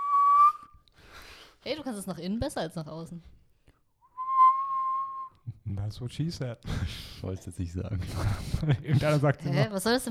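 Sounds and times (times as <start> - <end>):
person whistling a single sustained tone: 0.0 - 0.8, 4.1 - 5.4
speech: 1.6 - 3.4, 5.9 - 10.0
laughter: 7.8 - 9.7.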